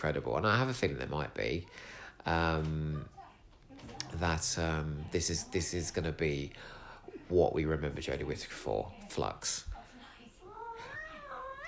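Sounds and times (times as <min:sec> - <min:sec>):
speech: 0:00.0 - 0:03.2, 0:03.8 - 0:09.7
cat meowing insistently: 0:10.6 - 0:11.6.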